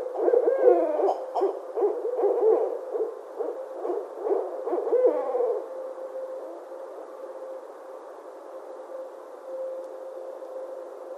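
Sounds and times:
barred owl hoots and cackles: 0.0s - 5.7s.

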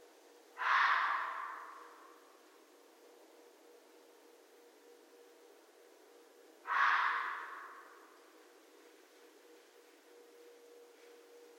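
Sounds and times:
faint hum: 0.0s - 11.5s
red fox giving a rough raspy bark: 0.6s - 2.2s, 6.7s - 8.1s.

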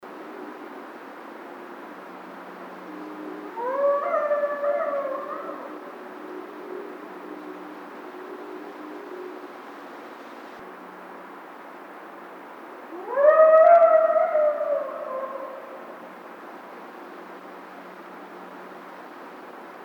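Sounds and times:
coyotes: 2.6s - 10.6s, 12.9s - 19.2s.

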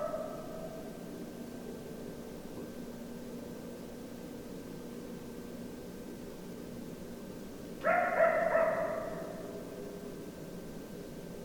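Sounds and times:
coyote howling: 7.8s - 9.6s.

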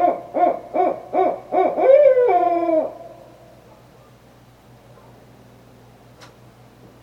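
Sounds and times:
barred owl hooting: 0.0s - 3.4s.

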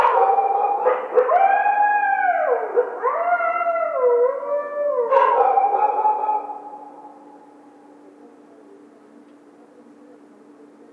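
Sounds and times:
coyote yelping and howling: 0.2s - 6.7s.

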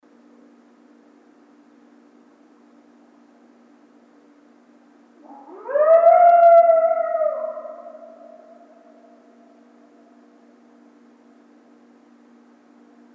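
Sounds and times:
coyote single howl: 5.2s - 10.0s.

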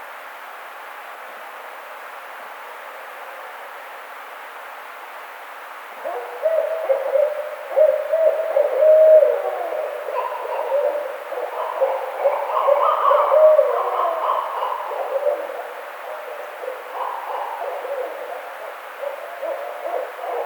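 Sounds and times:
barred owl giving low hoots and wavering cackling notes: 6.0s - 20.4s.

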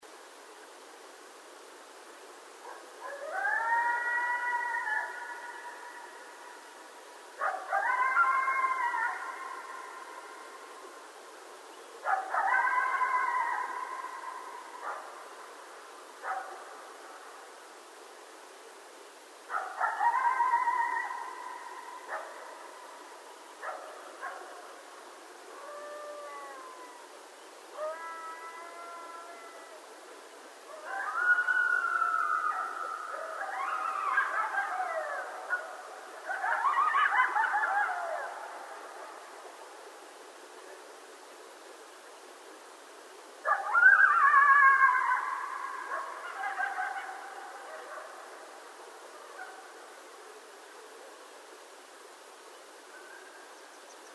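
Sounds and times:
howl: 3.0s - 6.0s, 7.4s - 9.7s, 12.1s - 15.0s, 19.6s - 22.3s, 25.5s - 27.1s, 27.7s - 29.8s, 30.7s - 38.9s, 43.4s - 48.1s.

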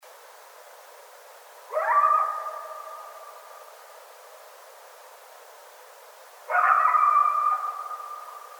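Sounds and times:
several coyotes howling: 1.7s - 3.6s, 6.5s - 8.5s.

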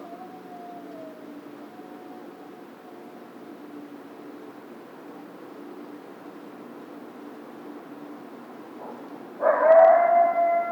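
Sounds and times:
coyote howling: 0.0s - 3.3s, 9.4s - 10.7s.

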